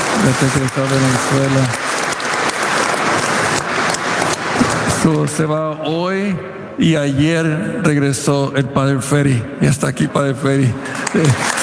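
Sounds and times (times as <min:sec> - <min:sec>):
audience applauding: 0:00.0 - 0:06.0, 0:10.8 - 0:11.6
speech: 0:00.2 - 0:01.8, 0:05.0 - 0:11.6.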